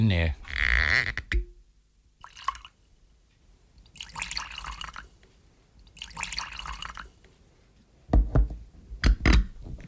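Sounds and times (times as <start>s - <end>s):
speech: 0.0s - 1.5s
whisky being poured into glasses in a ship captain's cabin: 2.2s - 2.8s, 3.8s - 5.2s, 5.9s - 7.2s.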